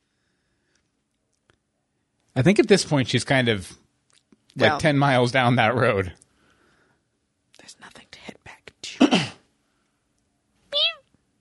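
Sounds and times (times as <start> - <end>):
speech: 2.4 - 3.8, 4.6 - 6.2
cat meowing: 10.7 - 11.1.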